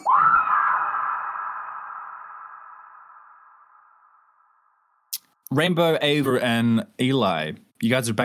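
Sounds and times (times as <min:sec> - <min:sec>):
distant blood-curdling high-pitched scream: 0:00.0 - 0:04.9
speech: 0:05.5 - 0:08.2.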